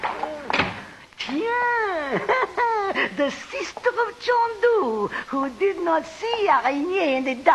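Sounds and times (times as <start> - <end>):
door shutting quickly with a short thump: 0.5 - 0.9
speech: 1.3 - 2.4, 3.1 - 7.5.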